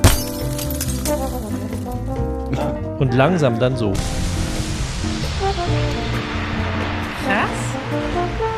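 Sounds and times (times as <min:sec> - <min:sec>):
glass bottle clinking strike: 0:00.0 - 0:01.8
dense bright glass shattering and tinkling: 0:00.0 - 0:01.9
speech: 0:02.5 - 0:04.3
steady rushing wash: 0:04.0 - 0:08.5.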